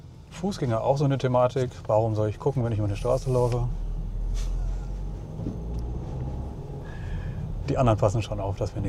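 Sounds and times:
car engine and road noise driving through city traffic: 0.0 - 8.8
faint passing city traffic: 0.0 - 8.8
speech: 0.4 - 3.8, 7.7 - 8.8.

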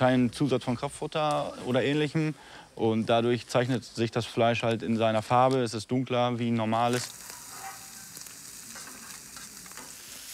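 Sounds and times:
speech: 0.0 - 7.4
onions frying in a pan: 6.2 - 10.3.

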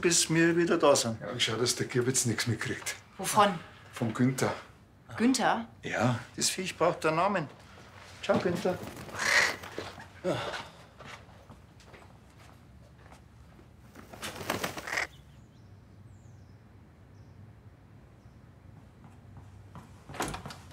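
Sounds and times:
speech: 0.0 - 7.6, 8.2 - 9.3, 10.2 - 10.7
crow giving harsh raspy caws: 9.1 - 10.0, 14.7 - 15.2.

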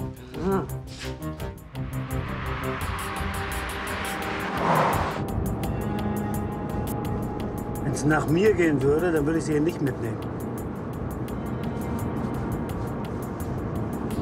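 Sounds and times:
car engine rumble while driving: 0.0 - 14.2
road noise: 0.0 - 14.2
speech: 8.0 - 10.4.

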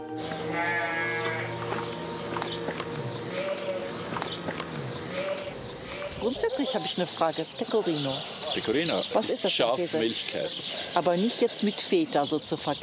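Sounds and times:
hooves shuffling: 0.1 - 12.8
sheep bleating on an old farm in Italy: 0.2 - 2.0, 2.9 - 6.9
goats bleating on an old farm in Italy: 0.2 - 6.9
speech: 6.3 - 12.8.

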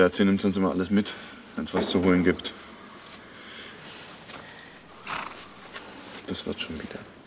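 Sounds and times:
speech: 0.0 - 2.6, 6.3 - 7.2
steady rustle: 1.6 - 7.2
horse shuffling and stirring in a stable: 4.0 - 7.0
horse giving a short breathy snort: 4.6 - 5.9.

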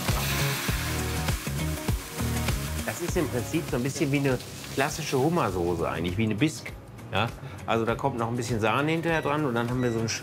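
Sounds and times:
shrimp heads and tails frying in hot fat: 0.0 - 6.5
speech: 2.9 - 10.2.

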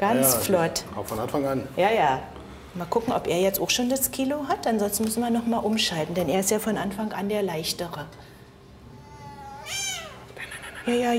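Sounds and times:
speech: 0.0 - 8.3, 10.9 - 11.1
house cat meowing: 8.9 - 10.3.

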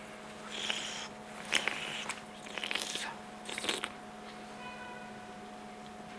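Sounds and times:
faint steady hum: 0.0 - 6.1
breathing in through the nose: 0.4 - 3.7
biting and chewing a small olive from Nice, France: 0.4 - 4.0.

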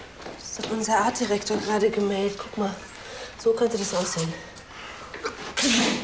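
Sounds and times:
speech: 0.7 - 4.5
person sneezing: 5.3 - 6.0.

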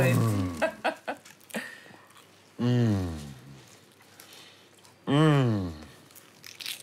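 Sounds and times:
biting into a crunchy flaky croissant: 1.2 - 6.8
person humming with enjoyment: 2.6 - 3.6, 5.1 - 6.0.

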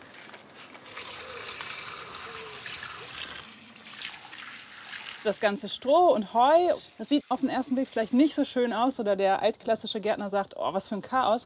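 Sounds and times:
water pouring from a watering can: 0.6 - 8.5
speech: 5.2 - 11.4.

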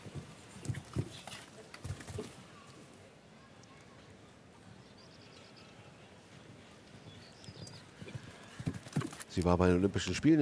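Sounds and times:
show-jumping horse's hooves thudding in a canter approaching a fence: 0.0 - 2.4, 6.6 - 9.5
speech: 9.4 - 10.4.

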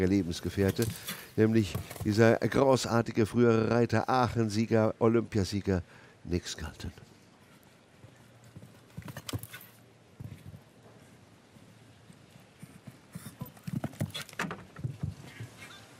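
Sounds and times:
speech: 0.0 - 7.1
horse hooves clip-clopping over a show-jumping course: 0.4 - 2.6, 7.5 - 15.9.

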